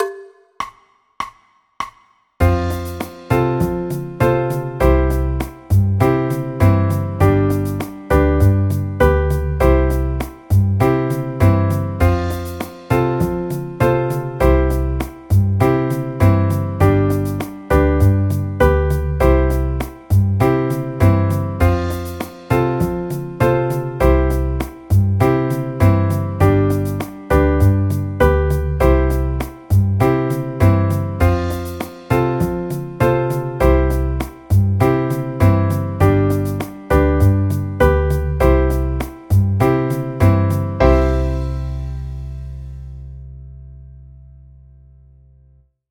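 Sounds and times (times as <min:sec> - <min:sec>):
C major chord progression: 0:02.4 - 0:44.4.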